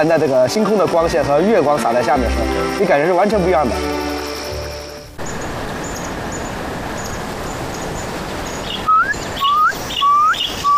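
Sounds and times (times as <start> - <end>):
speech: 0.0 - 4.1
bird calling rapidly with rising whistled notes at night: 1.9 - 7.2, 8.6 - 10.7.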